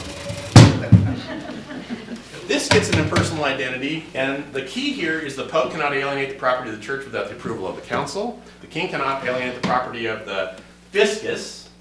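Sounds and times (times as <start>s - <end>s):
chair knocking while being adjusted: 0.3s - 1.3s, 2.7s - 3.4s
laughter: 0.7s - 2.7s
speech: 2.7s - 11.8s.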